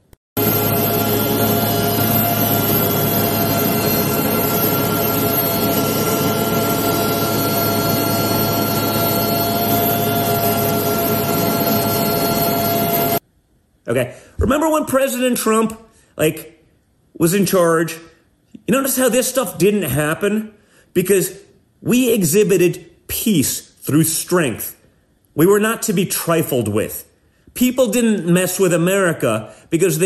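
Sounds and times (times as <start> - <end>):
helicopter engine and rotor drone during troop rappelling onto tanker: 0.4 - 13.2
speech: 13.9 - 16.5, 17.2 - 18.1, 18.7 - 24.8, 25.4 - 30.0.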